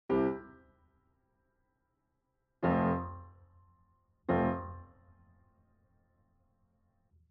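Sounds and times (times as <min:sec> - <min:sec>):
black grand piano test: 0:02.6 - 0:03.3, 0:04.3 - 0:05.0.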